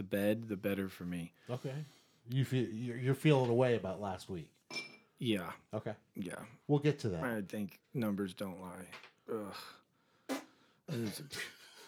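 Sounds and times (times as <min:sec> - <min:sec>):
speech: 0:00.0 - 0:09.8, 0:10.9 - 0:11.6
voice imitating flatulence with a wet buzzing raspberry: 0:10.3 - 0:10.6.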